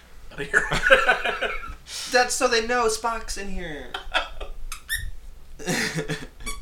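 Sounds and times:
speech: 0.4s - 4.0s, 5.6s - 6.4s
laughter: 0.5s - 1.8s, 3.9s - 4.6s, 5.6s - 6.3s
high-pitched squeaks: 4.7s - 5.2s.

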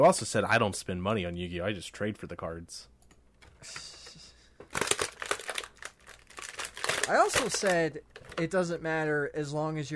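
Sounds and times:
speech: 0.0s - 2.9s, 3.6s - 3.9s, 7.1s - 9.9s
plastic packaging being torn open: 4.7s - 7.8s.

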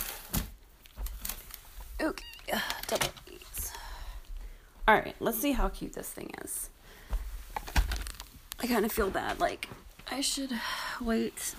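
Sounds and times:
wrapping paper crinkling underfoot: 0.0s - 3.5s, 7.5s - 9.7s
speech: 2.0s - 3.2s, 4.9s - 6.7s, 8.6s - 11.5s.

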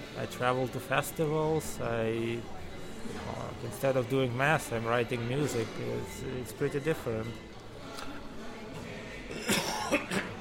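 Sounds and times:
speech: 0.2s - 7.5s
short harsh coughs: 9.3s - 10.4s.

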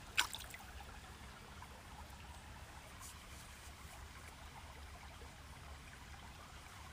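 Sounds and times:
brief sharp splash or click: 0.0s - 0.6s
gentle stream burbling and trickling: 0.0s - 6.9s.

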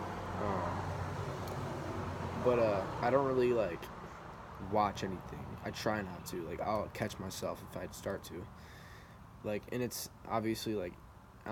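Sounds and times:
car passing by on a nearby street: 0.0s - 4.6s
speech: 2.4s - 4.0s, 4.6s - 8.8s, 9.4s - 11.5s.

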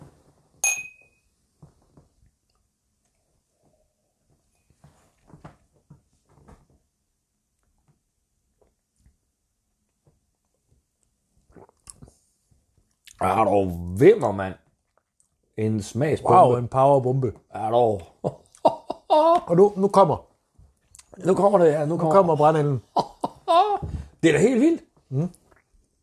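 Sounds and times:
glasses clinking in a toast: 0.6s - 1.2s
quiet sipping and swallowing: 11.4s - 12.2s, 20.8s - 21.2s, 25.1s - 25.9s
small mouth noises: 11.4s - 12.2s, 20.8s - 21.2s, 25.1s - 25.9s
speech: 13.2s - 14.6s, 15.6s - 18.4s, 19.5s - 20.3s, 21.2s - 23.1s, 24.2s - 25.4s
laughter: 18.3s - 19.7s, 22.2s - 24.0s.

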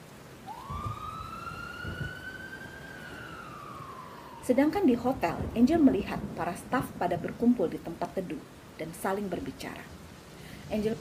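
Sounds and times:
low rumble of traffic: 0.0s - 10.9s
ambulance siren wailing: 0.3s - 5.6s
speech: 4.5s - 10.0s, 10.7s - 10.9s.

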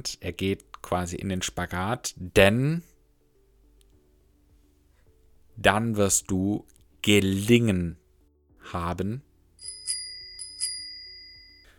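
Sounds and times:
speech: 0.0s - 2.9s, 5.6s - 8.0s, 8.7s - 9.3s
bicycle bell ringing: 9.6s - 11.7s.

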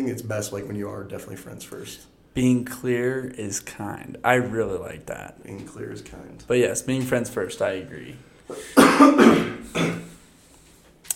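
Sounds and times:
speech: 0.0s - 10.0s
person coughing: 8.5s - 10.2s.

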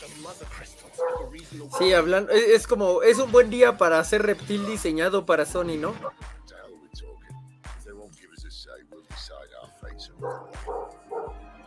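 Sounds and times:
speech: 0.3s - 6.4s, 9.9s - 10.9s
dogs barking: 0.8s - 3.8s, 10.1s - 11.6s
higher dog yips: 1.0s - 2.0s, 10.2s - 11.4s.

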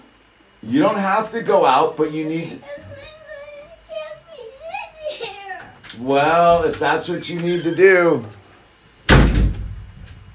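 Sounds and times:
speech: 0.7s - 3.1s, 6.0s - 8.4s
door slamming: 9.1s - 10.2s.

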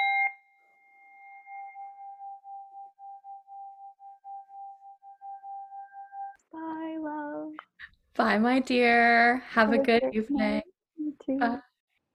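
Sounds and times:
bell struck and ringing with a pulsing waver: 0.0s - 6.4s
speech: 8.2s - 10.6s, 11.3s - 11.7s.

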